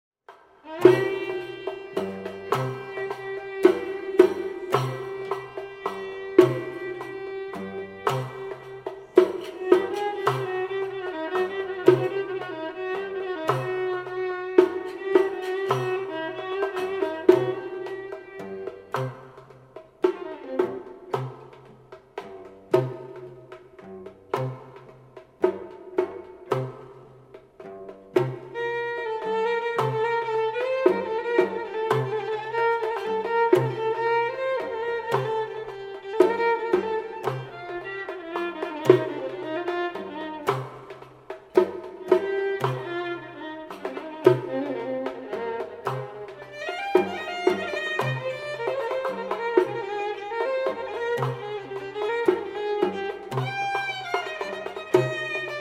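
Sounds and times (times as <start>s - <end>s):
violin taqsim in maqam Nahawand: 0.3s - 55.6s.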